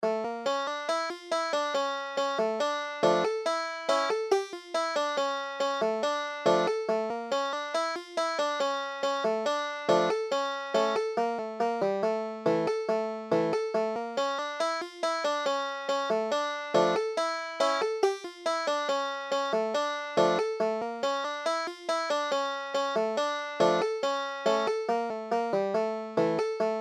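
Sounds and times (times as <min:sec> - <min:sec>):
klezmer tune on banjo: 0:00.0 - 0:26.8.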